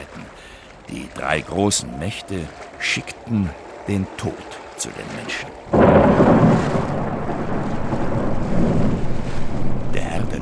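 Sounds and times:
steady heavy rain: 0.0 - 10.3
speech: 1.1 - 6.8
rolling thunder: 5.7 - 10.3.

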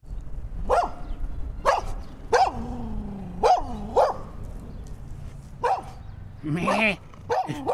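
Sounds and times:
nervous excited dog barking: 0.6 - 2.6, 3.4 - 4.3, 5.6 - 6.0, 6.6 - 7.7
speech: 6.4 - 7.7.

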